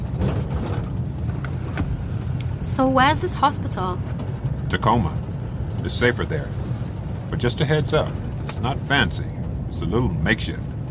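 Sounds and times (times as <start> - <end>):
Cadillac car driving with its engine running: 0.0 - 10.8
speech: 2.7 - 5.2, 5.8 - 6.6, 7.4 - 10.7.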